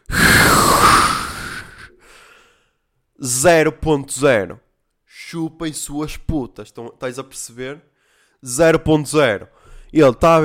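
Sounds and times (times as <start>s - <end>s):
hard breath blown into a breathalyzer straw: 0.0s - 2.7s
speech: 3.2s - 4.6s, 5.2s - 10.4s.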